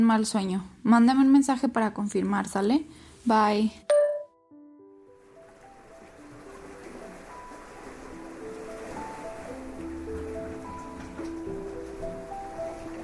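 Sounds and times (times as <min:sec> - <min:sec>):
speech: 0:00.0 - 0:03.9
ocean waves breaking on the shore: 0:05.1 - 0:13.0.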